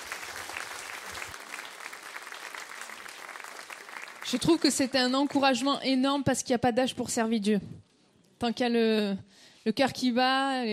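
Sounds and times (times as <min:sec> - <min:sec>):
audience applauding: 0:00.0 - 0:05.6
speech: 0:04.3 - 0:07.8, 0:08.4 - 0:10.7.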